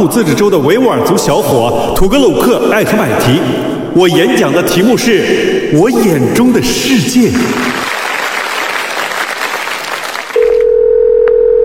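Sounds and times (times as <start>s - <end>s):
speech: 0.0s - 7.8s
loud applause: 7.4s - 10.6s
telephone dial tone before a phone call: 10.4s - 11.6s.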